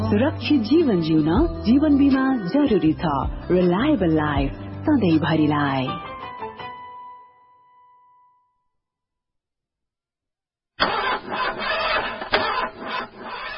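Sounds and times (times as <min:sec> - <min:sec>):
speech: 0:00.1 - 0:06.0
car starter cranking without catching due to a battery problem: 0:10.8 - 0:13.5.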